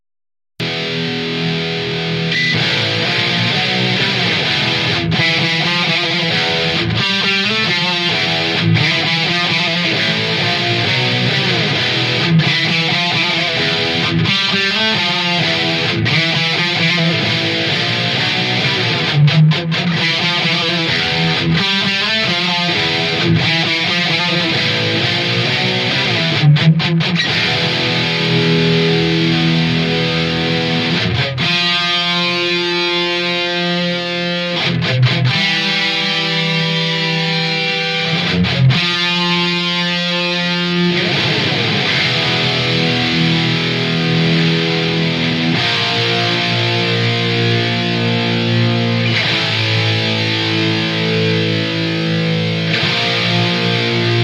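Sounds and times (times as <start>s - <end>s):
electric guitar through Mesa Boogie Mark III Blue Stripe and Kettner Access preamp: 0.6s - 54.2s.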